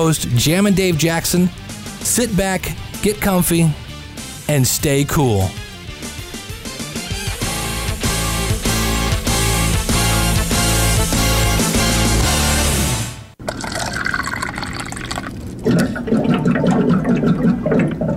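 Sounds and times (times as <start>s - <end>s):
speech: 0.0s - 3.8s, 4.5s - 5.6s
rhythmic music: 0.0s - 13.1s
water cooler gurgling with water glugging and bubbling: 13.4s - 18.1s.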